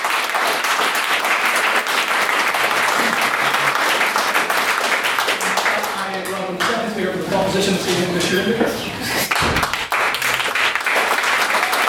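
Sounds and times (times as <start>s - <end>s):
audience applause in a debating chamber after a maiden speech: 0.0s - 6.4s, 9.2s - 11.8s
speech: 7.6s - 9.1s.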